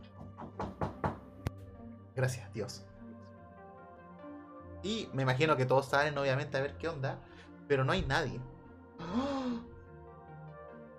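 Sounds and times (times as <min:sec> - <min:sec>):
soft knocks on a door: 0:00.1 - 0:01.3
speech: 0:02.2 - 0:02.9, 0:04.8 - 0:09.3.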